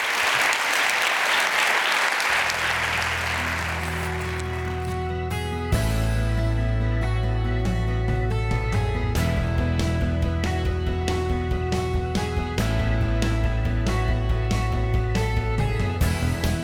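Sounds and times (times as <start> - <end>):
large audience applause at a university chapel service: 0.0 - 5.1
sustained music: 2.4 - 16.6.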